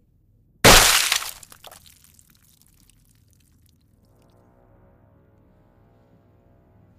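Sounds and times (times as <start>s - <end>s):
loud crack of a woman's skeleton shattering: 0.7s - 3.0s
smaller crackling snaps: 0.7s - 3.6s.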